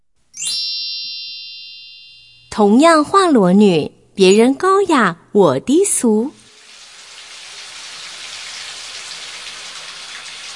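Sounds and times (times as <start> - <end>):
speech: 2.6 - 6.4
shower water running in a bathroom: 6.2 - 10.5.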